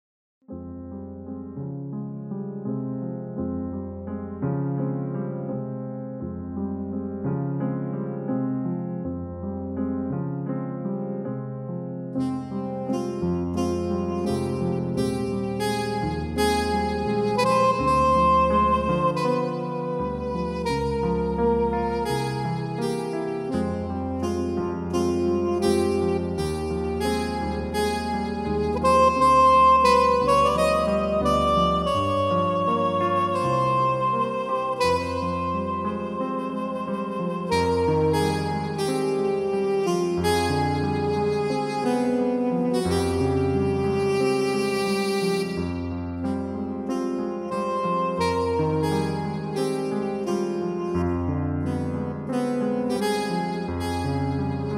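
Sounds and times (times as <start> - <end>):
FM synthesizer piano playing: 0.5 - 54.7
saxophone: 12.1 - 54.7.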